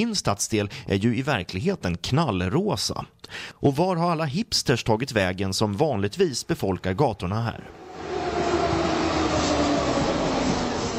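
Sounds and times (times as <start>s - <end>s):
speech: 0.0s - 8.5s
subway train rumbling as it pulls away: 7.7s - 10.9s.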